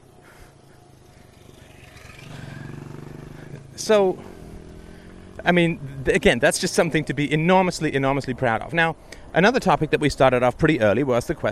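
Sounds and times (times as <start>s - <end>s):
motorbike engine passing by: 0.0s - 7.1s
noise: 0.0s - 11.5s
speech: 3.8s - 4.3s, 5.4s - 11.5s.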